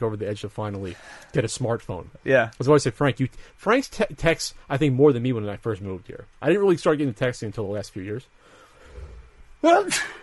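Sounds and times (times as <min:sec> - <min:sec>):
speech: 0:00.0 - 0:08.4, 0:09.6 - 0:10.2
person sneezing: 0:09.8 - 0:10.2.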